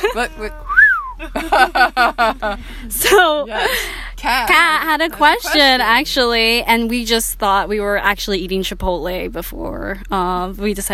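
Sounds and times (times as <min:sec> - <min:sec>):
laughter: 0:00.0 - 0:04.1
speech: 0:00.2 - 0:10.9
quick clear swooping whistle: 0:00.7 - 0:01.2.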